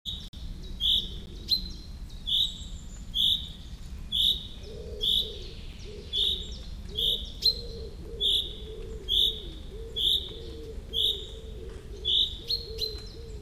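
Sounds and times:
common chaffinch Fringilla coelebs calls: 0:00.1 - 0:13.4
low soft cooing: 0:04.6 - 0:13.4.

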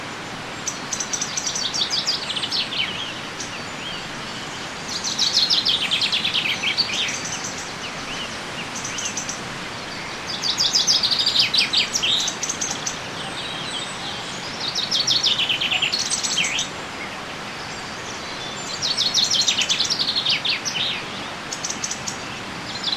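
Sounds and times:
common chaffinch Fringilla coelebs singing: 0:00.0 - 0:22.9
outdoor noise: 0:00.0 - 0:22.9.

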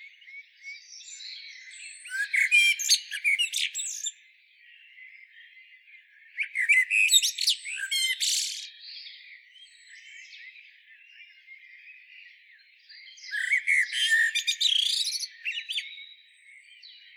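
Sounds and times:
common blackbird scratchy twittering with brief whistles: 0:00.0 - 0:04.2, 0:06.4 - 0:08.8, 0:13.2 - 0:16.1.

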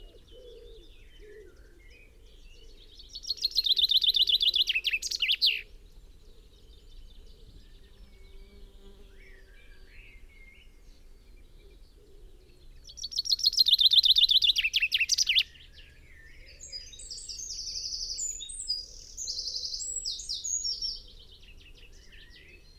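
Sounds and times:
common chaffinch (Fringilla coelebs) descending trilled song: 0:03.2 - 0:05.7, 0:12.8 - 0:22.7.

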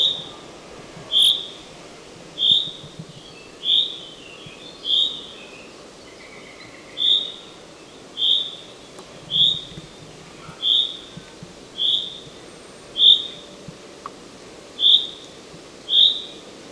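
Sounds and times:
common chaffinch Fringilla coelebs whistled calls: 0:00.0 - 0:01.7, 0:02.4 - 0:09.9, 0:10.5 - 0:11.2, 0:11.8 - 0:13.6, 0:14.8 - 0:15.2, 0:15.9 - 0:16.4.

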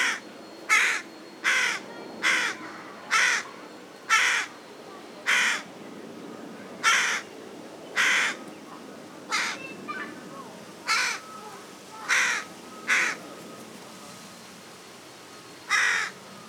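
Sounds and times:
Carrion crow cawing, Corvus corone: 0:00.0 - 0:03.5, 0:04.1 - 0:04.6, 0:05.3 - 0:05.7, 0:06.8 - 0:07.3, 0:08.0 - 0:08.4, 0:09.3 - 0:10.0, 0:10.9 - 0:13.2, 0:15.7 - 0:16.2.

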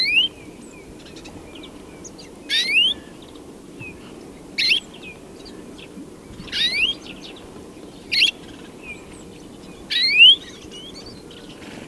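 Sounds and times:
European greenfinch calls: 0:00.0 - 0:00.4, 0:01.0 - 0:11.8.

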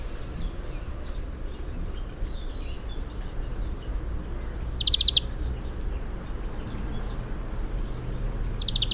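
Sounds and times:
European greenfinch Chloris chloris song: 0:00.0 - 0:08.9
low steady background noise: 0:00.0 - 0:08.9.

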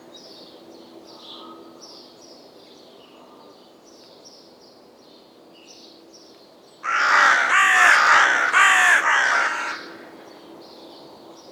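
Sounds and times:
Carrion crow Corvus corone giving rasping caws: 0:06.8 - 0:10.4.

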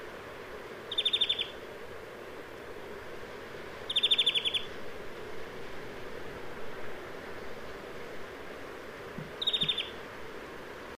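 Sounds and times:
faint steady background noise: 0:00.0 - 0:10.9
European greenfinch (Chloris chloris) giving chattering trills: 0:00.9 - 0:01.6, 0:03.9 - 0:04.7, 0:09.4 - 0:10.0.

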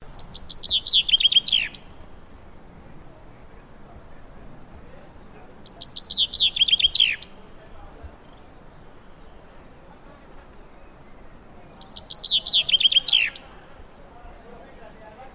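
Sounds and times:
common chaffinch Fringilla coelebs song: 0:00.0 - 0:02.6, 0:05.6 - 0:08.6, 0:11.7 - 0:13.7.

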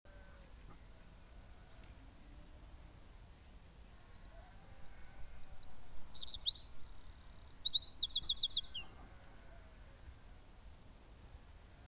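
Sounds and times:
Eurasian wren Troglodytes troglodytes singing: 0:03.8 - 0:08.9.

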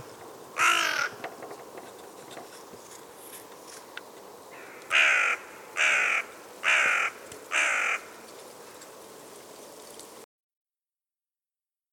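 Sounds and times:
carrion crow Corvus corone cawing: 0:00.6 - 0:01.2, 0:04.5 - 0:08.2.

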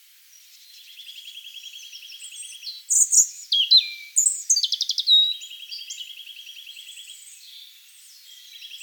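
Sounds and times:
European robin singing high varied phrases and sharp trills: 0:00.9 - 0:08.8.

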